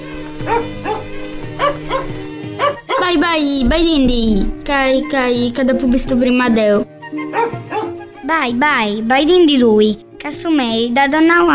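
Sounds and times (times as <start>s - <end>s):
small dogs squabbling over a bone with high-pitched yips and yelps: 0.2s - 3.1s, 7.2s - 8.0s
speech: 3.1s - 6.9s, 8.3s - 11.5s.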